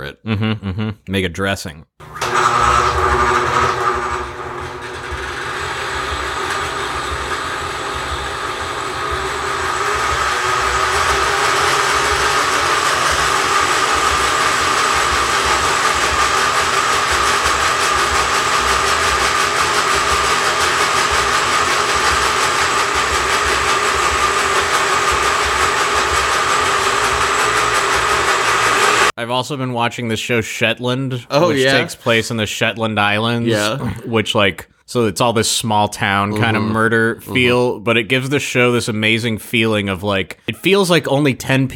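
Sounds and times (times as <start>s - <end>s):
laughter: 0.1s - 1.1s, 31.3s - 32.1s, 33.5s - 34.2s, 36.2s - 37.8s
speech: 0.1s - 3.8s, 29.3s - 41.7s
blender blending herbs and lemon: 2.0s - 29.2s.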